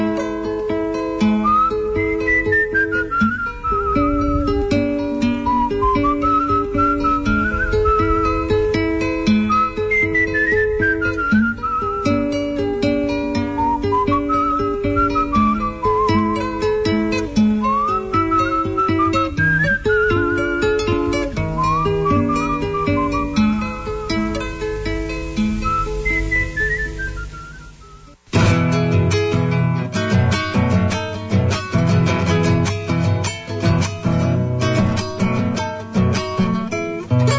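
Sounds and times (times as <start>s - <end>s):
steady instrumental accompaniment with a soft bass pulse: 0.0s - 37.3s
slow mournful whistled melody: 1.2s - 28.2s.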